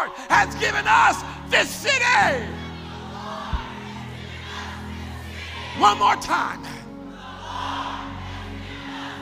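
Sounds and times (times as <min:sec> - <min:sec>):
speech: 0:00.4 - 0:02.7, 0:05.8 - 0:06.8
standing church audience shouting a declaration in unison: 0:02.1 - 0:06.2, 0:07.1 - 0:09.2.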